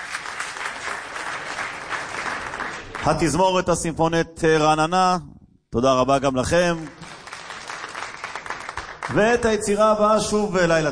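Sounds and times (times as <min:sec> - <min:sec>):
audience applause for a singer at a concert: 0:00.0 - 0:03.4, 0:06.7 - 0:09.3
speech: 0:03.0 - 0:07.0, 0:09.1 - 0:10.9.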